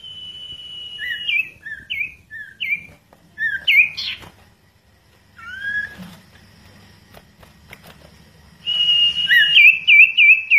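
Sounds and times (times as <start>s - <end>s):
bird singing clear whistled notes: 0.0s - 4.2s, 5.4s - 6.0s, 8.6s - 10.5s.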